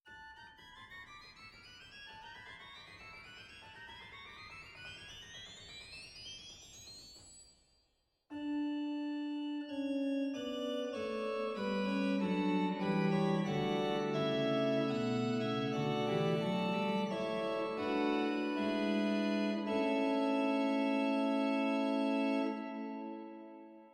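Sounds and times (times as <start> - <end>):
pipe organ Borstwerk Sesquialtera stop in Zwolle: 8.4 - 23.6.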